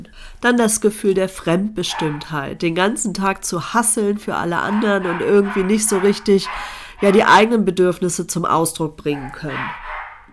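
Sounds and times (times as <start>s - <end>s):
speech: 0.2s - 9.8s
dog barking: 1.9s - 2.4s, 4.6s - 7.5s, 9.1s - 10.3s.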